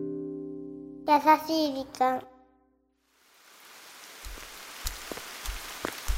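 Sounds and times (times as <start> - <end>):
speech: 1.2 - 2.3
gentle rain falling: 3.0 - 6.1.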